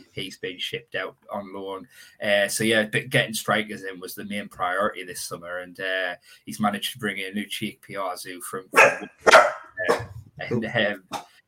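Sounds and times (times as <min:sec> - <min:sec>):
speech: 0:00.2 - 0:11.3
dog barking: 0:08.8 - 0:10.2.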